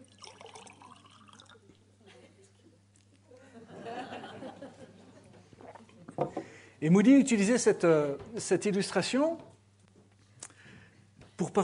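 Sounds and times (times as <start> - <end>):
water pouring into a glass: 0.0 - 1.7
laughter: 3.3 - 5.4
speech: 6.2 - 9.5.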